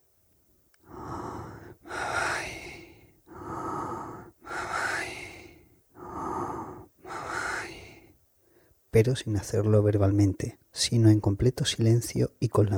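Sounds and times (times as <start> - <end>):
deep steady meditative breathing in and out: 0.8 - 8.9
speech: 9.0 - 12.7.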